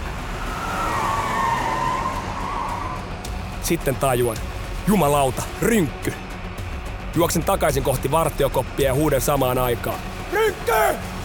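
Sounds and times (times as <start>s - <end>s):
Mercedes car tires squealing: 0.0s - 3.5s
Mercedes car engine roaring under hard acceleration: 0.0s - 4.8s
speech: 3.6s - 6.3s, 7.1s - 11.2s.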